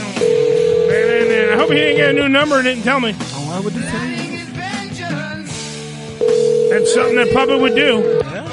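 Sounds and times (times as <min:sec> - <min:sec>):
telephone dial tone: 0:00.2 - 0:02.5, 0:06.2 - 0:08.2
speech: 0:01.7 - 0:04.2, 0:06.7 - 0:08.2.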